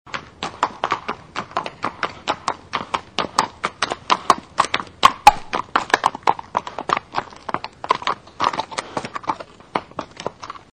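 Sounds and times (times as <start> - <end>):
horse walking: 0.1 - 10.7.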